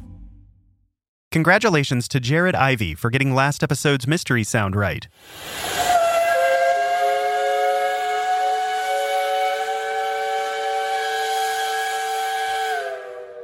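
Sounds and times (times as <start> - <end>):
speech: 1.4 - 5.8
steam whistle installed in 1892 on a university campus in Georgia: 5.4 - 13.4.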